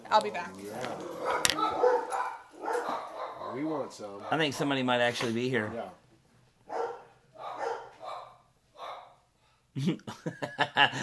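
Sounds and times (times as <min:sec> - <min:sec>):
speech: 0:00.1 - 0:02.3, 0:03.5 - 0:06.0, 0:09.8 - 0:11.0
dogs barking: 0:01.0 - 0:04.6, 0:06.7 - 0:09.2
laughter: 0:09.8 - 0:11.0.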